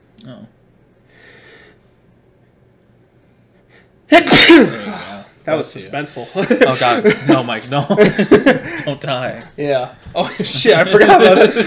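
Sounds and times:
quiet breaths: 0.8 - 4.1
speech: 4.1 - 4.8, 5.5 - 11.6
person sneezing: 4.1 - 5.3
laughter: 6.1 - 11.6.

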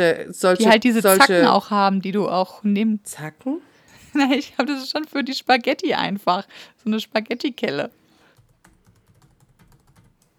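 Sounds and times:
speech: 0.0 - 8.0
laughter: 0.6 - 1.6
typing on a computer keyboard: 8.3 - 10.3.

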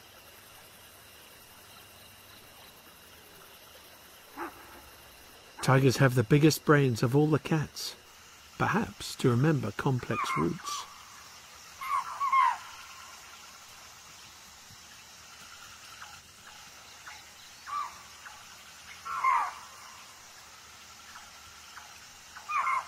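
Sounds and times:
steady hiss: 0.0 - 22.8
speech: 5.7 - 8.0, 8.6 - 10.9
deer calling from across a river: 9.9 - 10.9, 11.8 - 12.7, 22.4 - 22.8.

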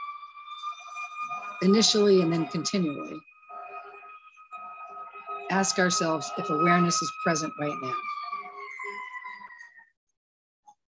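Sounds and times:
emergency vehicle siren wailing outside: 0.0 - 9.9
speech: 1.2 - 3.3, 5.5 - 8.2.

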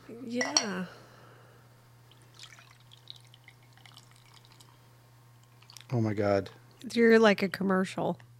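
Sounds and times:
speech: 0.1 - 1.0, 5.9 - 8.3
glassware clinking: 0.4 - 0.8
drink pouring into a glass: 2.1 - 4.8, 5.4 - 6.0
faint drips: 2.1 - 6.0.

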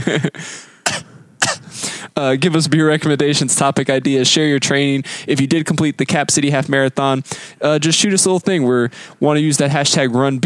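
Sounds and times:
speech: 0.1 - 0.7, 2.2 - 10.4
harsh coughs: 0.1 - 2.0.

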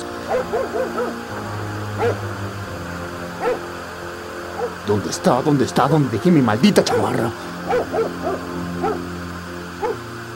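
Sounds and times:
dog barking: 0.2 - 1.2, 2.0 - 2.2, 3.4 - 3.7, 4.6 - 4.8, 6.8 - 9.1, 9.8 - 10.0
speech: 0.3 - 2.7, 4.9 - 8.5.

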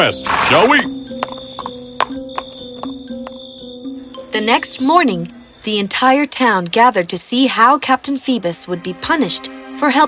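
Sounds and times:
speech: 0.0 - 1.0, 4.4 - 10.0
horse hooves clip-clopping: 1.1 - 3.4.

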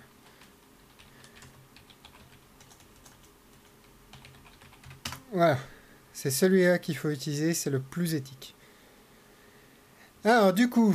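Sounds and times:
typing on a computer keyboard: 0.2 - 5.2
speech: 5.3 - 8.6, 10.2 - 10.9.

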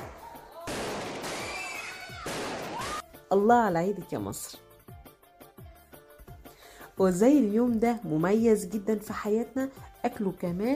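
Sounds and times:
firecrackers crackling during Eid celebrations in Egypt: 0.0 - 3.0
whistling fireworks rockets rising: 0.0 - 3.0
speech: 3.3 - 4.6, 7.0 - 10.7.

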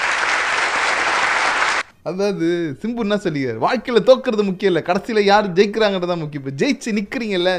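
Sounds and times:
crowd clapping: 0.0 - 1.8
speech: 2.0 - 7.5.

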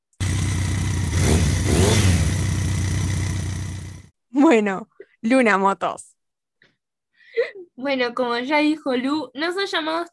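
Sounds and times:
motorcycle engine rumbling and revving: 0.1 - 4.1
speech: 4.5 - 6.1, 7.4 - 10.1.

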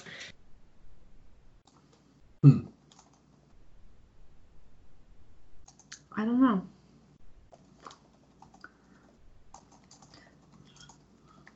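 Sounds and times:
speech: 2.4 - 2.7, 6.2 - 6.7
typing a search term on a computer keyboard: 2.9 - 3.3, 5.7 - 6.0, 7.5 - 11.5.

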